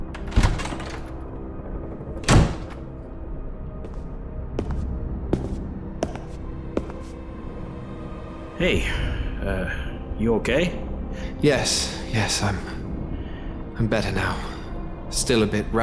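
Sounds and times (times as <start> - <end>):
door bumping and thudding open: 0.0 - 1.4, 2.0 - 3.0
footsteps tapping across a hard floor: 3.8 - 7.2
speech: 8.6 - 12.8, 13.8 - 14.5, 15.1 - 15.8.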